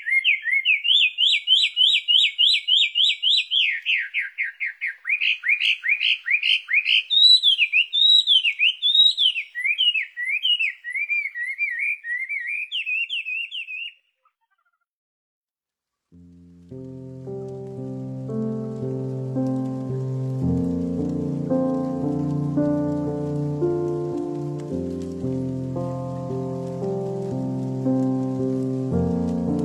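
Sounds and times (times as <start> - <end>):
bird singing a bright fast warbling trill: 0.0 - 14.8
soft low music with sustained layered chords: 16.2 - 29.6.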